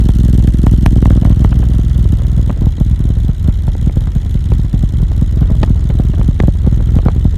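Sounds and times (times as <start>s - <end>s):
F800GS motorcycle racing: 0.0s - 7.3s.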